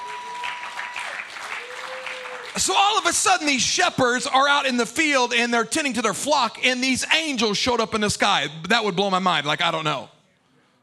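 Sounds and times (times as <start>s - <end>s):
audience clapping hands: 0.0s - 3.1s
speech: 2.6s - 10.2s.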